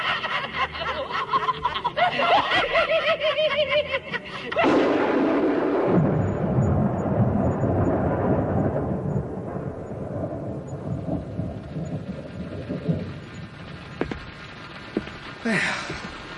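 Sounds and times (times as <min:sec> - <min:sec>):
laughter: 0:00.0 - 0:04.8
hiss of rain beginning: 0:00.0 - 0:16.3
long heavy roll of thunder: 0:04.5 - 0:16.3.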